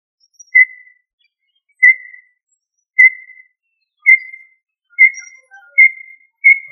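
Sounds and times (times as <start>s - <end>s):
tinamou whistled call: 1.8s - 2.3s, 3.0s - 6.7s.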